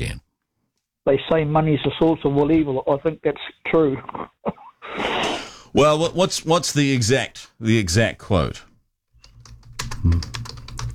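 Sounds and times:
speech: 1.0s - 8.7s, 10.0s - 10.4s
rapid uneven typing on a computer keyboard: 9.2s - 10.9s.

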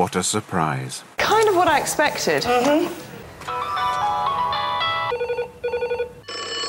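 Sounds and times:
speech: 0.1s - 3.6s
telephone ringing with warbling electronic tones: 3.5s - 6.6s.

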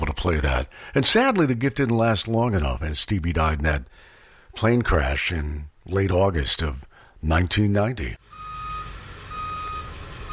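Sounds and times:
speech: 0.2s - 8.3s
truck reversing alarm beeping while dumping material in a driveway: 8.2s - 10.3s.

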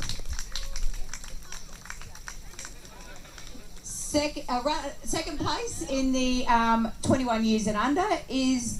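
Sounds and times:
audience clapping: 0.0s - 3.9s
faint murmur of voices: 0.0s - 8.7s
speech: 4.2s - 8.7s.

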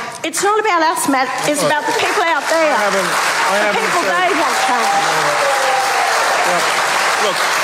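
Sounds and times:
speech: 0.2s - 5.8s, 6.4s - 7.5s
large crowd applauding: 1.3s - 7.6s
people whooping and cheering: 4.3s - 7.6s.

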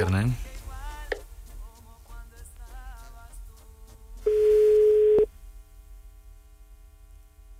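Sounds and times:
speech: 0.1s - 0.5s
telephone call tones before voicemail: 4.3s - 5.3s.

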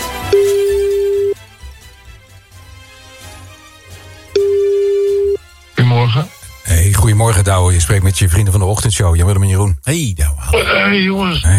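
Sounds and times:
telephone call ringing out: 0.3s - 1.3s, 4.3s - 5.4s
speech: 7.1s - 11.5s.

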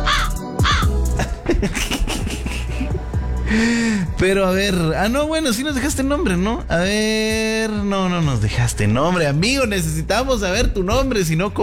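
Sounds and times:
crows cawing: 0.0s - 1.1s
laughter: 1.1s - 3.7s
speech: 3.5s - 11.6s.

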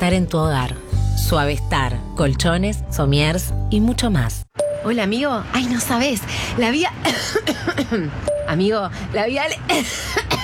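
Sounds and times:
speech: 0.0s - 10.4s
person coughing: 7.0s - 8.1s, 9.6s - 10.4s.

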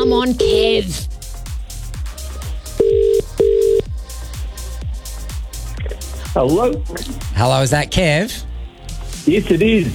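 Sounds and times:
rhythmic thumping beat: 0.0s - 9.9s
speech: 0.1s - 1.1s, 6.4s - 8.5s, 9.2s - 9.9s
telephone ringback tone after dialling a call: 2.8s - 3.8s.

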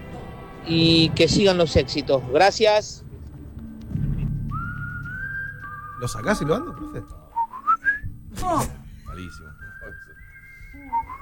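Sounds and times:
speech: 0.6s - 3.1s, 6.0s - 7.2s, 8.4s - 9.6s
person whistling a film theme melody: 4.4s - 8.1s, 8.9s - 11.1s.

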